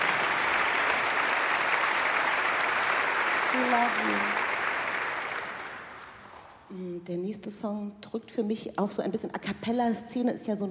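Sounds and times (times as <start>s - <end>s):
concert audience applause: 0.0s - 6.6s
speech: 3.5s - 4.4s, 7.0s - 10.7s.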